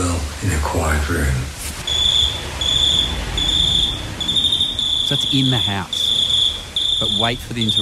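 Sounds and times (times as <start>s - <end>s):
speech: 0.4s - 1.6s, 5.1s - 6.0s, 7.0s - 7.7s
cricket chirping in trilling bursts: 1.8s - 7.7s.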